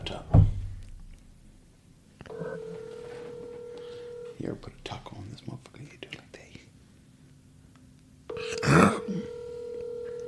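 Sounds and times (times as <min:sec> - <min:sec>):
steady phone dialing tone during a call: 0:02.3 - 0:04.6, 0:08.3 - 0:10.2
speech: 0:04.4 - 0:06.5.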